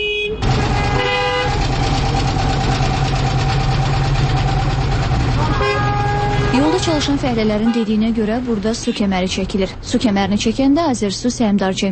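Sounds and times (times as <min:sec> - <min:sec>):
short car horn toot: 0:00.0 - 0:01.7, 0:05.4 - 0:08.2
car and truck engines rumbling in traffic squeezing past roadworks: 0:00.0 - 0:11.8
speech: 0:06.9 - 0:11.8.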